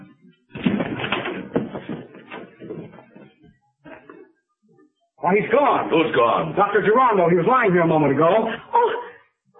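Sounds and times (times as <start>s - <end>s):
door being forced open: 0.5s - 3.3s
speech: 5.3s - 8.9s.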